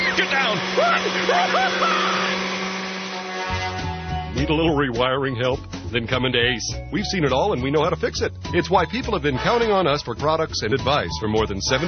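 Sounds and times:
vacuum cleaner switching on and running: 0.0 - 4.4
speech: 0.5 - 2.1, 4.4 - 11.8.

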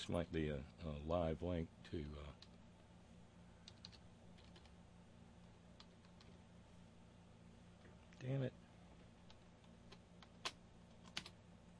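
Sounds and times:
speech: 0.0 - 2.5, 8.2 - 8.6
low steady hum: 0.0 - 11.7
key clicks from a computer keyboard: 3.6 - 4.7, 9.2 - 11.4.

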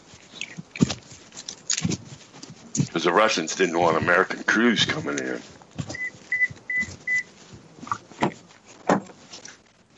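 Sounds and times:
handling clunks and thumps: 0.0 - 9.6
speech: 3.0 - 5.9
short electronic beeps at a steady pitch: 6.0 - 7.3.

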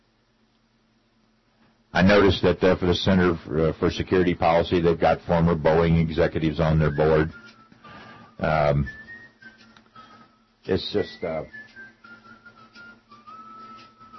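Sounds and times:
speech: 2.0 - 7.5, 8.4 - 9.0, 10.6 - 11.6
person whistling faintly in the background: 6.8 - 14.1.

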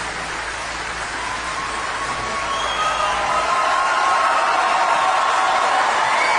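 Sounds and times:
large church audience cheering: 0.0 - 6.3
high whoops and whistles: 1.2 - 4.8, 6.0 - 6.3.

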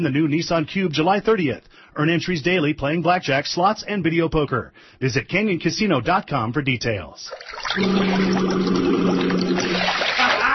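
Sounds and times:
speech: 0.0 - 10.1
bubbles blown into bath water: 7.3 - 10.5.

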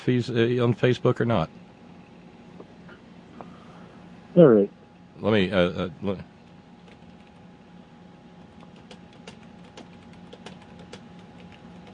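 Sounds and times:
speech: 0.0 - 1.6, 4.4 - 6.3
typing on a computer keyboard: 6.8 - 7.4, 8.4 - 11.9.

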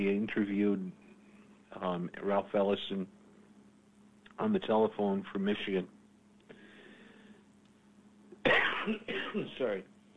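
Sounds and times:
speech: 0.0 - 1.0, 1.7 - 3.2, 4.4 - 6.0, 8.5 - 9.9
faint low hum: 0.0 - 10.1
cough: 8.4 - 9.6.

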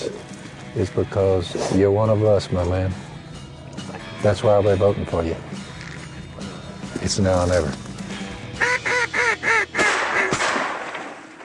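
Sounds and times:
speech: 0.8 - 3.1, 4.2 - 5.6, 7.0 - 7.8
nasal duck-call honks made by a man imitating a duck call with his nose: 8.6 - 10.3.

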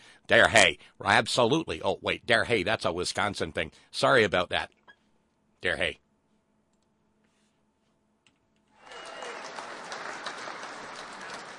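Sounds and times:
speech: 0.3 - 4.8, 5.6 - 6.0
audience clapping: 8.8 - 11.5.

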